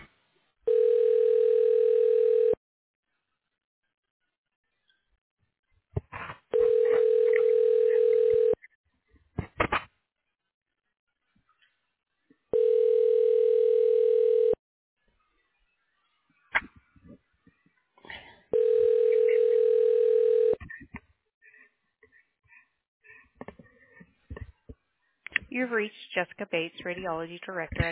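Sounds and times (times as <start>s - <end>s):
telephone ringback tones during call transfer: 0.7s - 2.6s, 6.5s - 8.6s, 12.5s - 14.6s, 18.5s - 20.6s
speech: 25.6s - 27.9s.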